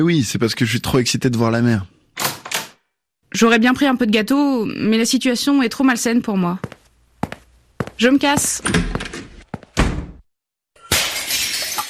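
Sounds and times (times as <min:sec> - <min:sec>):
speech: 0:00.0 - 0:02.3, 0:03.4 - 0:06.8, 0:08.0 - 0:09.0
plate breaking: 0:10.8 - 0:11.8.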